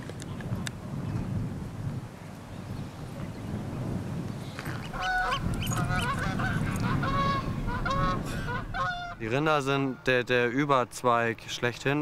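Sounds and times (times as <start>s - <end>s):
wind rumbling across the microphone: 0.0s - 10.0s
flock of geese honking: 4.7s - 10.1s
speech: 9.2s - 11.9s.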